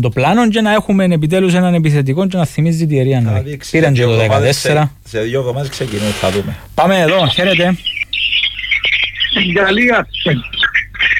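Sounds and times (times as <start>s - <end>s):
speech: 0.0s - 8.0s, 8.8s - 10.6s
birds chirping loudly: 5.6s - 11.1s.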